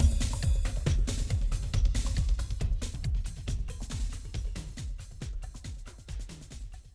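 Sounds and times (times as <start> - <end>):
club music: 0.0 - 5.2.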